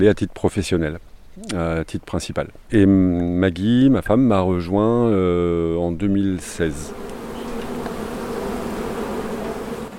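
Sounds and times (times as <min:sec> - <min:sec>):
speech: 0:00.0 - 0:07.1
honeybees buzzing: 0:06.4 - 0:09.9.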